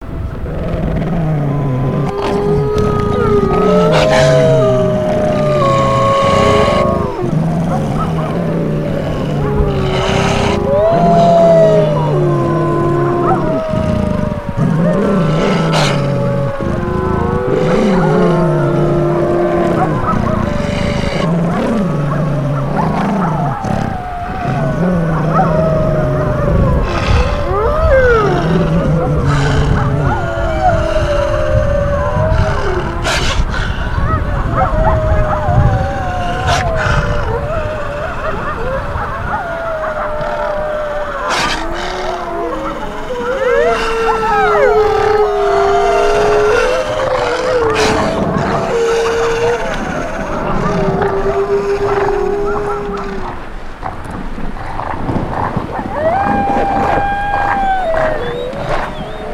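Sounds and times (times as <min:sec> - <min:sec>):
werewolves snarling: 0:00.0 - 0:59.3.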